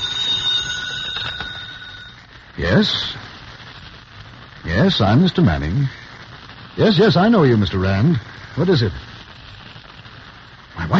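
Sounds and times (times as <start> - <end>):
telephone ringing with metallic bell: 0.0 - 2.2
speech: 2.6 - 3.2, 4.8 - 6.0, 6.8 - 9.1.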